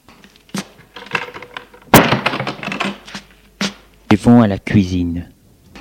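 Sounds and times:
door pushed shut with a loud thud: 0:01.9 - 0:02.6
speech: 0:04.1 - 0:05.4.

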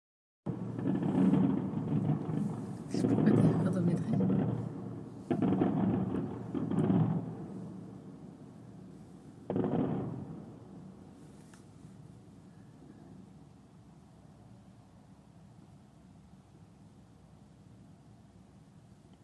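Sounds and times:
quiet low murmur: 0:00.5 - 0:07.2
fireworks with dull low booms and rumbling crackles: 0:00.5 - 0:13.5.

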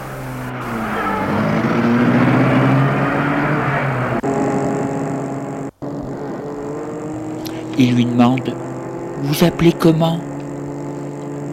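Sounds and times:
taxi engine starting, revving and driving off: 0:00.0 - 0:11.5
speech: 0:07.8 - 0:08.6, 0:09.2 - 0:10.3.

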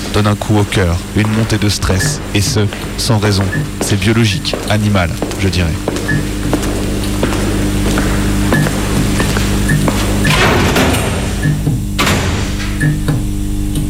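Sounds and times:
steady low mechanical hum: 0:00.0 - 0:13.8
speech: 0:00.2 - 0:06.4
cell door latches and bolts clanking: 0:10.3 - 0:11.4, 0:12.0 - 0:12.8.

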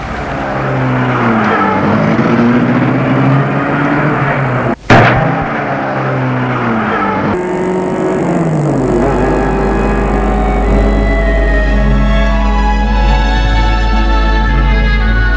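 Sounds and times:
car engine starting and revving as it pulls away: 0:00.0 - 0:15.2
sharp clunk: 0:04.9 - 0:05.6.

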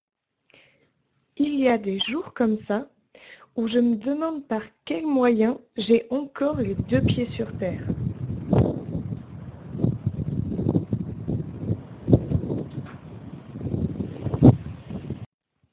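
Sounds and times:
speech: 0:01.4 - 0:08.0
strong wind buffeting the microphone: 0:06.5 - 0:15.3.

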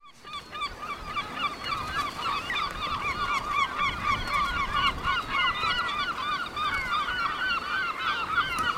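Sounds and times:
seabird colony on two islets calling: 0:00.1 - 0:08.7
wind noise on a windy day: 0:00.6 - 0:07.5.

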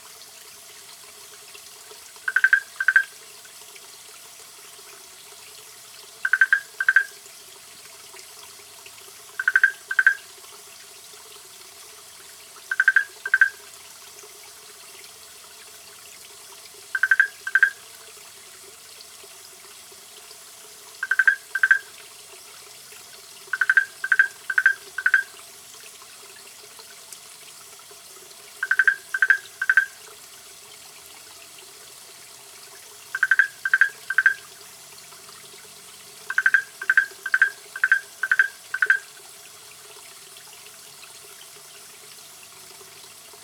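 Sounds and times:
small frog calling near San Javier Cordoba Argentina: 0:02.3 - 0:03.1, 0:06.2 - 0:07.1, 0:09.4 - 0:10.2, 0:12.7 - 0:13.6, 0:17.0 - 0:17.8, 0:21.0 - 0:21.9, 0:23.5 - 0:25.3, 0:28.6 - 0:30.0, 0:33.1 - 0:34.4, 0:36.3 - 0:39.1.

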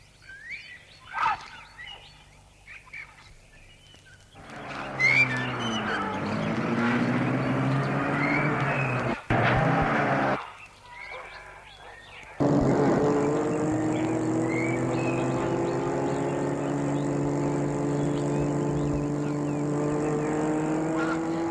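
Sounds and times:
car tires crunching on a long gravel drive: 0:04.3 - 0:10.4, 0:12.4 - 0:21.4
low car engine hum: 0:04.4 - 0:10.4, 0:12.4 - 0:21.4.

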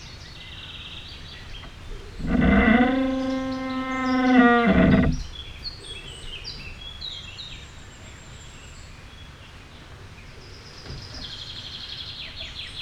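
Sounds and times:
young tree bending in the wind creaking, recorded with contact mics: 0:01.6 - 0:05.7.

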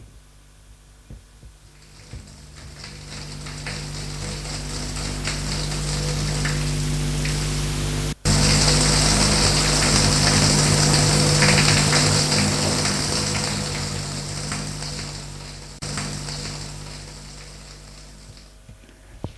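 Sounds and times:
running water hissing: 0:01.6 - 0:18.7.

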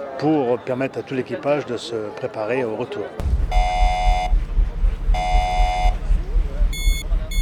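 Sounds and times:
speech: 0:00.0 - 0:03.6
low mechanical rumble: 0:03.2 - 0:07.4
shrill buzzing space station emergency alarm: 0:03.5 - 0:06.1, 0:06.7 - 0:07.4.

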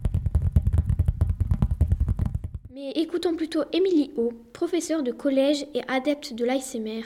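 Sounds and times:
fingers tapping rapidly on a surface: 0:00.0 - 0:02.7
speech: 0:02.8 - 0:07.0.

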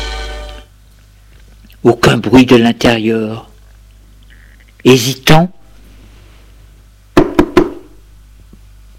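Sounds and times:
speech: 0:01.8 - 0:03.5, 0:04.8 - 0:05.6
knocking on a door: 0:07.2 - 0:07.9.

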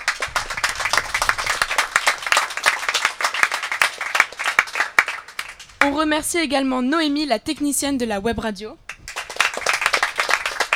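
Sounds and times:
sustained applause from a group: 0:00.0 - 0:06.0, 0:08.9 - 0:10.7
speech: 0:05.9 - 0:08.8.

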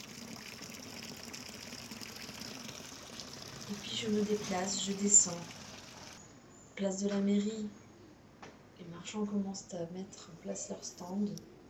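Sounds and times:
running water of city fountains in an Aix-en-Provence street: 0:00.0 - 0:06.2
speech: 0:03.7 - 0:05.6, 0:06.8 - 0:07.8, 0:09.0 - 0:11.5.

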